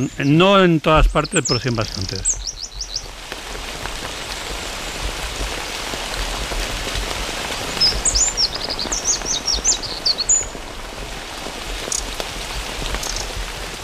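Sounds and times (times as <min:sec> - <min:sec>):
speech: 0:00.0 - 0:02.5
faint bird chirps and short trills: 0:00.0 - 0:03.2, 0:06.8 - 0:11.0, 0:11.8 - 0:13.7
steady rain pattering and hissing: 0:00.0 - 0:13.8.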